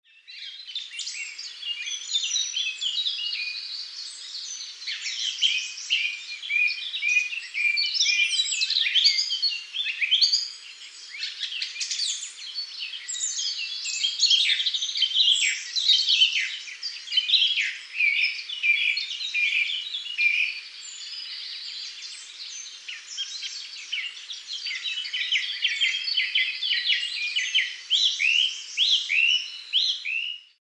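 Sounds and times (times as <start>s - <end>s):
nature sounds: 0.0s - 30.5s.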